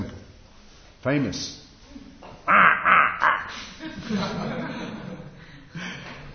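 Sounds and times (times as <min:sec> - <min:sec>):
speech: 0:01.0 - 0:01.6
crow cawing: 0:02.5 - 0:03.6
laughter: 0:02.5 - 0:06.3.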